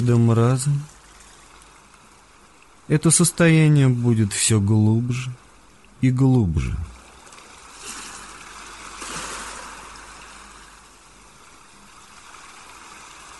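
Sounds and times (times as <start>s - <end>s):
speech: 0.0s - 0.9s, 2.9s - 5.4s, 6.0s - 6.9s
ocean surf: 6.5s - 13.3s.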